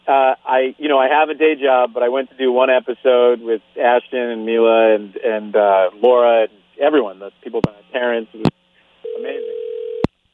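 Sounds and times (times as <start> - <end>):
speech: 0.1 - 8.6
phone call-waiting tone on the line: 9.0 - 10.1
telephone-line speech: 9.1 - 9.6.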